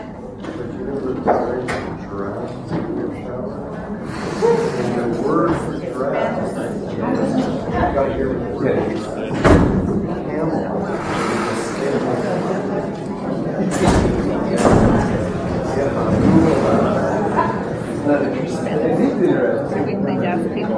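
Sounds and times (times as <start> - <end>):
people talking: 0.0 - 20.7
doors slamming shut: 9.3 - 10.0, 13.7 - 16.7.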